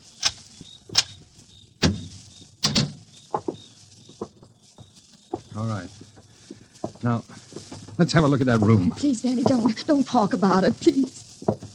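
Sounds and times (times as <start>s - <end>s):
door thudding as it moves: 1.8s - 3.6s
speech: 5.6s - 6.1s, 7.0s - 7.4s, 8.0s - 11.2s.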